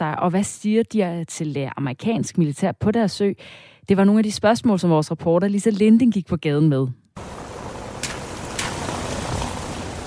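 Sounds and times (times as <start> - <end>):
speech: 0.0 - 7.4
brief splashes or drips of rain: 7.2 - 10.0
light rain pattering outdoors at a square in Rønne on Bornholm Denmark: 7.2 - 10.0.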